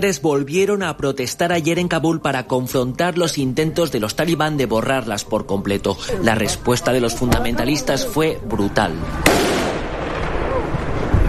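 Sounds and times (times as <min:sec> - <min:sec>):
speech: 0:00.0 - 0:09.6
police gunshots fired into the air to disperse protesting women: 0:09.2 - 0:10.6.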